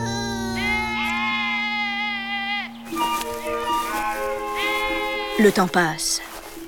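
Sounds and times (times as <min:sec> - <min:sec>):
sheep and goats bleating: 0:00.5 - 0:06.2
speech: 0:05.4 - 0:06.6.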